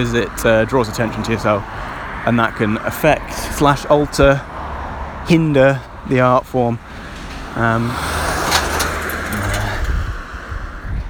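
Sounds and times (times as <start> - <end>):
speech: 0.0 - 4.6, 5.2 - 7.0, 7.6 - 8.2
broadband road noise: 0.0 - 11.0
loud vehicle passing by: 3.5 - 11.0.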